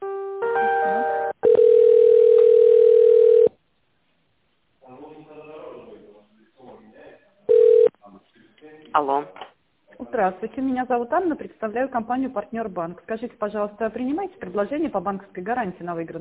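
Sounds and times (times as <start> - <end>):
telephone ringback tone on a business call being put through: 0.7 - 3.5, 7.5 - 7.9
speech: 9.0 - 9.4, 10.2 - 16.1.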